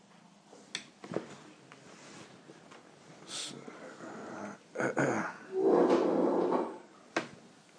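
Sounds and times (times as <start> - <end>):
wooden chairs creaking and scraping under children: 5.5 - 6.9.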